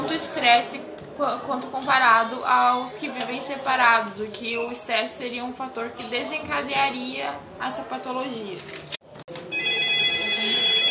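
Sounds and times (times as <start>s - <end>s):
speech: 0.2s - 9.0s
telephone ringing: 9.4s - 10.8s.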